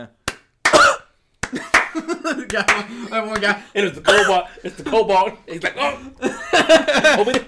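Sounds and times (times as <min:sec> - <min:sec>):
speech: 0:00.0 - 0:00.2, 0:02.4 - 0:07.4
person coughing: 0:00.7 - 0:01.1, 0:04.1 - 0:04.5
laughter: 0:01.5 - 0:07.4.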